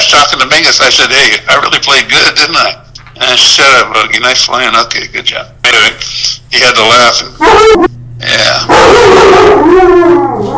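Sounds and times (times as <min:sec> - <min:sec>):
speech: 0:00.3 - 0:10.5
dog giving a drawn-out bark stretching into a whining cry: 0:07.4 - 0:07.9, 0:08.7 - 0:10.5.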